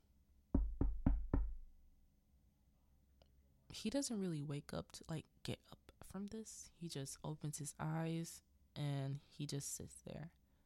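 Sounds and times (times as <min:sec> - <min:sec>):
solid knocks on a wooden pantry door: 0:00.6 - 0:01.7
speech: 0:03.8 - 0:10.4.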